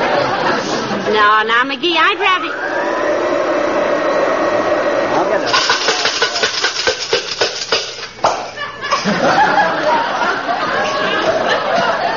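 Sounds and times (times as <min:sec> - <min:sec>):
laughter: 0:00.0 - 0:01.1, 0:08.3 - 0:12.1
speech: 0:01.2 - 0:03.0
vacuum cleaner humming: 0:02.4 - 0:08.0.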